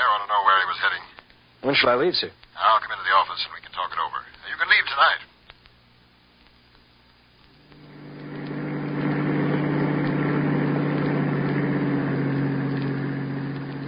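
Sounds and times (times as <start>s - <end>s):
speech: 0.3s - 5.3s
bus engine running with a low rumble: 7.8s - 13.8s.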